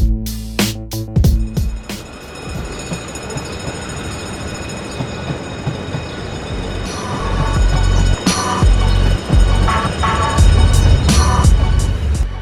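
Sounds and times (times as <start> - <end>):
train rumbling through a railway station: 1.4 - 12.3
high-pitched train wheel squeals: 1.8 - 12.1.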